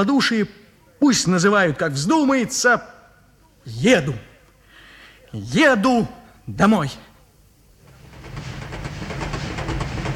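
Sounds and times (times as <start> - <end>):
speech: 0.0 - 3.0, 3.6 - 4.3, 5.3 - 7.1
hard-class train carriage rattling along the rails: 7.8 - 10.1.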